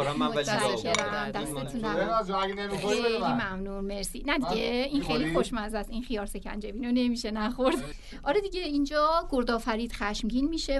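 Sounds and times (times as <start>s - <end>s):
speech: 0.1s - 10.7s
glasses of sharbat clinking as they are set down: 0.6s - 1.3s.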